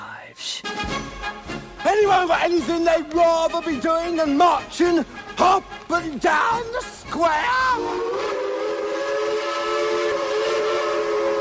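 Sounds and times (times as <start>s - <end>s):
speech: 2.0s - 8.4s
train whistle blast: 7.7s - 11.4s.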